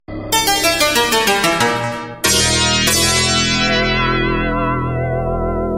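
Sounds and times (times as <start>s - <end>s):
synth ending: 0.1s - 5.6s.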